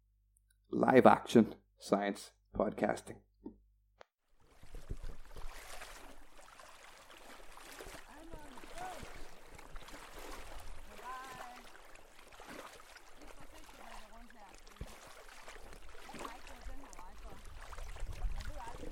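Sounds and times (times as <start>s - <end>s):
speech: 0.8s - 3.6s
wading through knee-deep water in a wetland at Gullensteen Strand Fyn Denmark: 4.3s - 18.9s.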